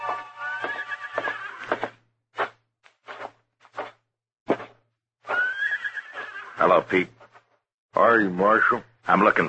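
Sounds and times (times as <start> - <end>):
horse thuds and stamps in a stable: 0.1 - 3.9, 4.5 - 4.8
horse whinnying in a stable: 0.3 - 1.9, 5.3 - 6.6
speech: 6.9 - 7.1, 8.7 - 9.4.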